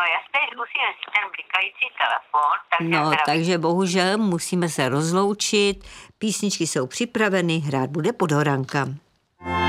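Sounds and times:
voice talking over a tinny telephone line on air: 0.0 - 3.5
speech: 0.0 - 9.6.

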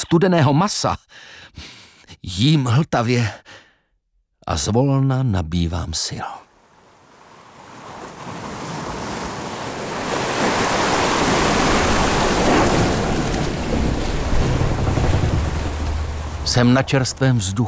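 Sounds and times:
speech: 0.1 - 3.6, 4.4 - 6.4, 16.5 - 17.6
sea waves surging on the open sea from a schooner deck: 6.5 - 17.6
gusty wind buffeting the microphone: 8.1 - 17.6
low rumble of a vessel's hull and engine: 12.9 - 17.6.

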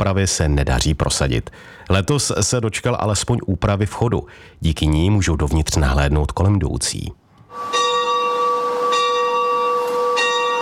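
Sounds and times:
speech: 0.0 - 7.8
church bell tolling: 7.5 - 10.5.

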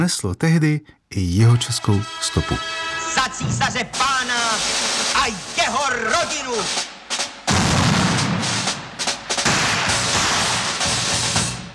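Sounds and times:
speech: 0.0 - 6.9
dense gunfire: 7.5 - 11.1.

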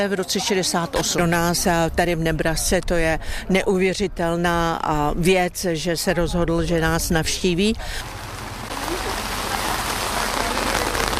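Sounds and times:
speech: 0.0 - 8.2
steady rain pouring on street pavement: 7.8 - 11.1.

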